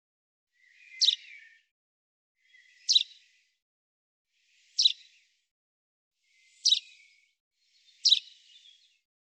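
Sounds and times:
common chaffinch calling: 0:00.6 - 0:01.5, 0:02.4 - 0:03.2, 0:04.6 - 0:05.1, 0:06.4 - 0:07.0, 0:07.8 - 0:08.8.

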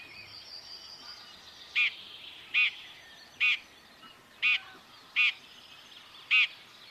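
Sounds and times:
soft background bird chatter: 0:00.0 - 0:06.8
Common chaffinch calls: 0:01.0 - 0:03.7, 0:04.4 - 0:05.5, 0:06.2 - 0:06.8.

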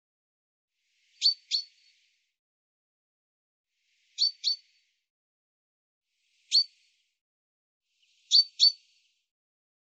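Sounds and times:
common chaffinch chink calls: 0:01.2 - 0:01.8, 0:04.2 - 0:04.7, 0:08.3 - 0:08.8.

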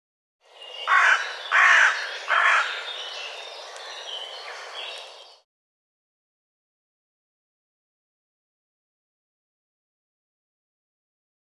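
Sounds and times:
bird calling loud harsh croaking notes: 0:00.8 - 0:03.1.

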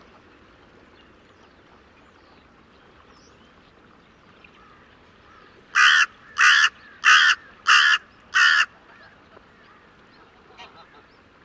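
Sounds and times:
bird cawing harshly: 0:05.7 - 0:08.7.

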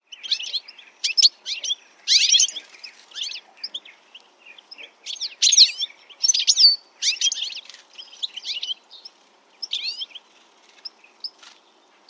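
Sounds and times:
bird chirping calls: 0:00.0 - 0:12.0.

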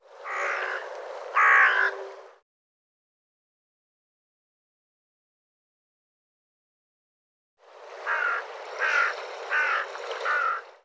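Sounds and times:
bird giving harsh hoarse cawing calls: 0:00.1 - 0:02.4, 0:08.0 - 0:10.8.

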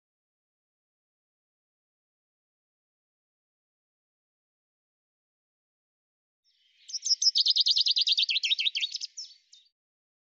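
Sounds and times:
common chaffinch singing: 0:06.7 - 0:09.7.

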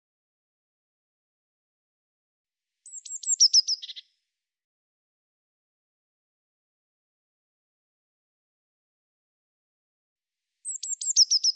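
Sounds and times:
Eurasian blue tit thin downslurred notes and buzzy churring: 0:02.9 - 0:04.1, 0:10.6 - 0:11.5.

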